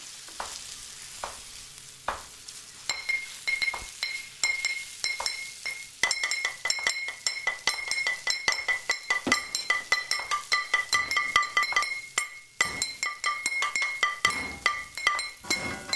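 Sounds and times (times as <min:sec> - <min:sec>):
frying food sizzling in a kitchen: 0:00.0 - 0:15.9
plates, spoons, pan and old glass bottles clinking in a kitchen: 0:02.9 - 0:15.9.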